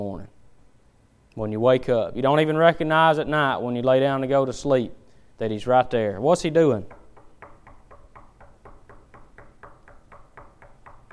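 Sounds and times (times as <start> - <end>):
speech: 0.0 - 0.4, 1.4 - 7.0
speaker knocking on a hard surface during a service: 6.9 - 11.1.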